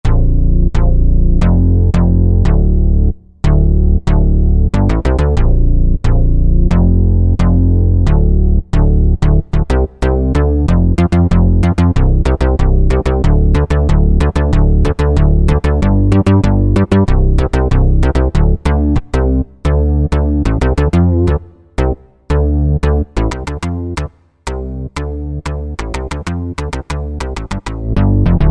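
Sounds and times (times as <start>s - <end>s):
synth bass on a Korg Wavestation A-D: 0.0s - 28.4s.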